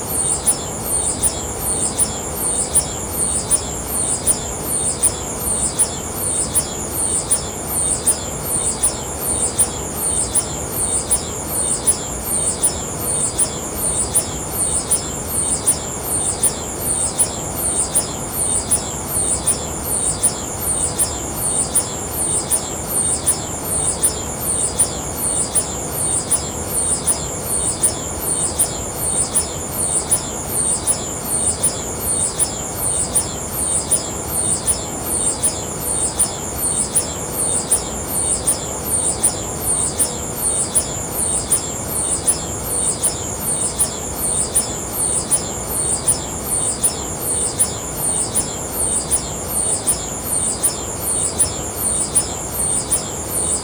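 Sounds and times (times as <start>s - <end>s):
ambient background noise at Paranal UT1 telescope: 0.0s - 53.6s.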